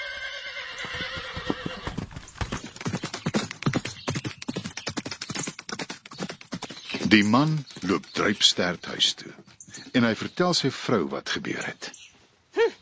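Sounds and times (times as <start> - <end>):
horse whinnying: 0.0 - 2.1
horse hoofbeats galloping: 0.0 - 10.9
speech: 7.1 - 9.4, 10.0 - 11.9.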